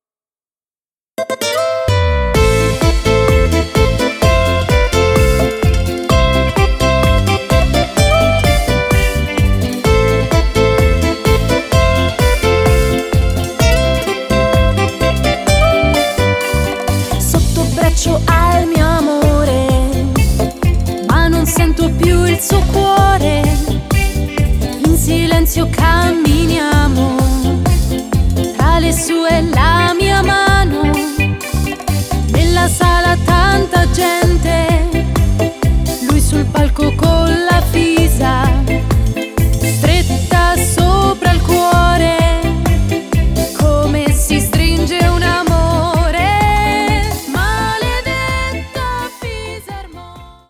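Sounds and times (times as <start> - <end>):
accordion: 1.9 - 50.4.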